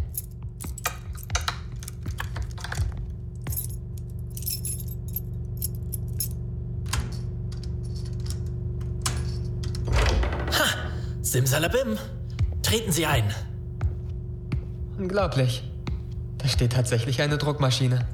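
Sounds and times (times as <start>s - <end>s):
keys jangling as someone tries them in a lock: 0.0s - 9.8s
steady low hum: 0.0s - 18.1s
speech: 11.3s - 13.5s, 15.0s - 15.7s, 16.4s - 18.1s.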